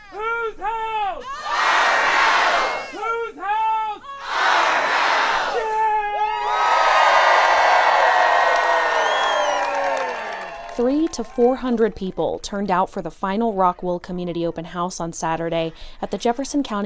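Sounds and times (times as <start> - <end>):
crowd shouting and cheering outdoors: 0.0 - 12.0
large protest crowd chanting in unison outdoors: 1.2 - 3.1, 4.0 - 5.8
speech: 10.8 - 16.8.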